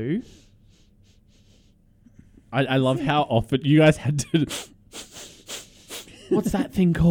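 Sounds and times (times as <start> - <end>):
speech: 0.0 - 0.4, 2.5 - 5.1, 6.3 - 7.1
airy nasal sniffs: 0.2 - 1.8, 4.5 - 6.2.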